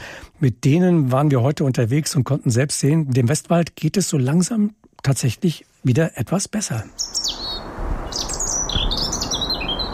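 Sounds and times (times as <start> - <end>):
soft steady outdoor noise: 0.0 - 9.9
speech: 0.4 - 7.2
European robin singing: 6.6 - 9.9.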